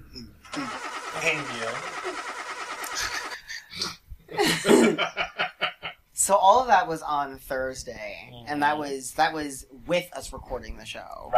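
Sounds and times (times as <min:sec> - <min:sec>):
voice imitating car engine cranking: 0:00.4 - 0:03.4
laughter: 0:00.6 - 0:06.0
speech: 0:01.2 - 0:02.3, 0:06.3 - 0:11.3.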